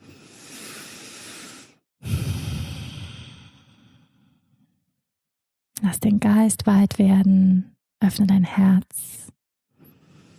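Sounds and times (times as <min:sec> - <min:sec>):
deep breathing in and out in a guided meditation: 0:00.0 - 0:04.8, 0:09.8 - 0:10.3
speech: 0:05.9 - 0:09.2.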